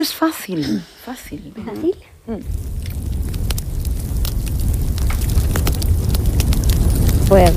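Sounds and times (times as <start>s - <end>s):
speech: 0.0s - 3.1s, 7.3s - 7.5s
bonfire crackling with falling sparks: 1.2s - 7.5s
sharp pops and snaps of a bonfire: 1.7s - 7.5s
dense rumbling roar of bonfire flames: 2.2s - 7.5s.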